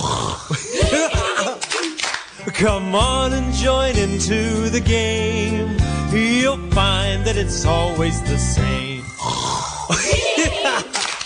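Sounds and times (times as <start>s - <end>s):
several people playfully imitating snoring: 0.0s - 1.4s, 9.1s - 10.8s
people giggling: 0.5s - 2.0s, 9.9s - 11.2s
scattered hand claps: 1.4s - 2.4s, 10.4s - 11.2s
speech: 2.6s - 11.0s.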